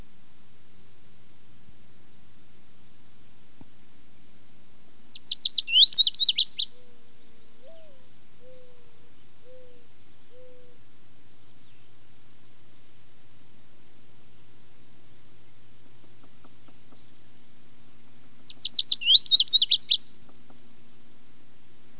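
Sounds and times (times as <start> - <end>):
lazuli bunting singing: 5.1 - 12.1, 14.3 - 21.0.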